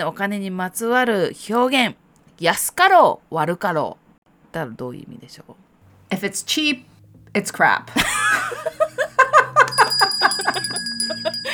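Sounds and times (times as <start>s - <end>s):
speech: 0.0s - 8.8s, 9.6s - 11.5s
lively laughter and vocal noise: 8.0s - 11.5s
bright quiz-show ding-dong chime for a correct answer: 9.6s - 11.5s.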